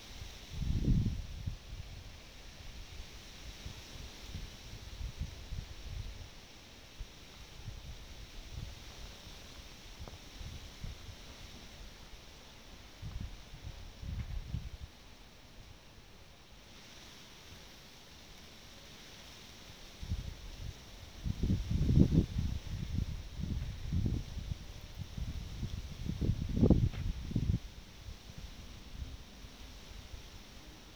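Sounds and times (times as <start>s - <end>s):
wind gusting through rustling leaves: 0.0s - 30.9s.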